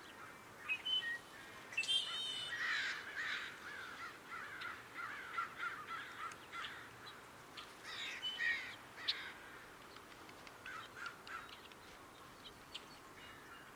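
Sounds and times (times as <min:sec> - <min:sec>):
crows cawing along an outdoor footpath: 0:01.3 - 0:07.2, 0:07.8 - 0:09.8, 0:10.6 - 0:11.6.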